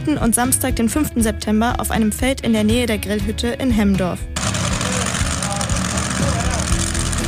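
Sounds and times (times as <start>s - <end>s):
speech: 0.1s - 4.3s
tractors pulling brake sleds at a tractor-pulling event on a field: 4.4s - 7.2s.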